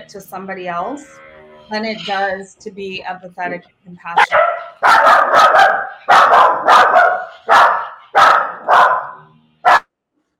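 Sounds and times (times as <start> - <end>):
speech: 0.0 - 4.5, 5.4 - 6.9
dogs barking: 4.2 - 9.9.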